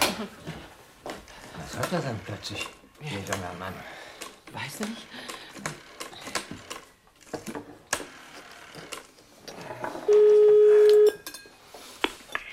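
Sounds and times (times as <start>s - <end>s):
speech: 0.2s - 0.5s, 1.8s - 5.8s
loud steady telephone tone: 10.1s - 11.2s.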